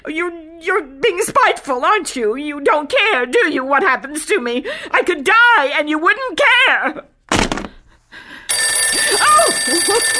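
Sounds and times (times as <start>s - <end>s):
speech: 0.0s - 7.1s, 9.6s - 10.1s
telephone bell ringing: 8.5s - 10.1s.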